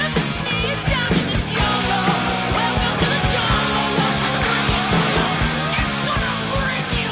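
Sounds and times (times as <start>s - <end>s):
dense distorted guitars in a hard rock song: 0.0s - 7.0s
driving drum beat in a hard rock song: 0.0s - 7.0s.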